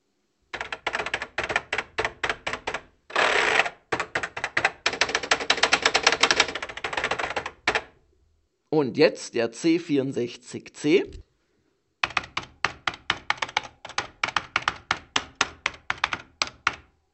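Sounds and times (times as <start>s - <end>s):
Commodore 64 Maxi computer keyboard clattering under fast typing: 0.5s - 8.0s, 12.0s - 16.9s
speech: 8.8s - 11.3s.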